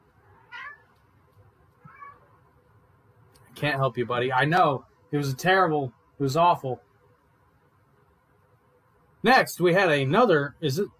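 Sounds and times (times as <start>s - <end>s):
domestic cat meowing loudly: 0.2s - 1.0s, 1.8s - 2.3s
speech: 3.6s - 6.9s, 9.2s - 10.9s.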